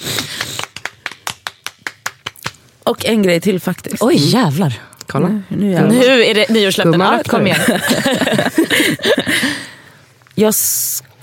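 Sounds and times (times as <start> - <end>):
hands clapping in applause for a New Year's resolution: 0.0 - 2.6
speech: 3.0 - 9.6, 10.4 - 11.2
laughter: 7.3 - 9.7.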